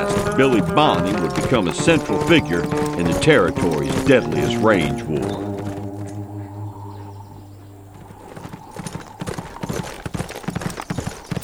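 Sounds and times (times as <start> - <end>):
horse hooves clip-clopping at a walking pace: 0.0 - 11.4
speech: 0.4 - 5.5
low sustained hum: 4.4 - 9.2.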